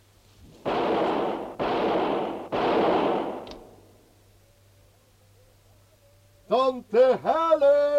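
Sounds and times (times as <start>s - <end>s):
gunshots with rumble: 0.6s - 3.9s
speech: 6.6s - 7.8s.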